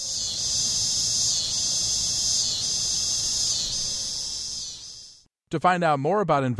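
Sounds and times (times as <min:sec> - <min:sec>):
cicadas singing in trees in summer: 0:00.0 - 0:05.2
speech: 0:05.5 - 0:06.5.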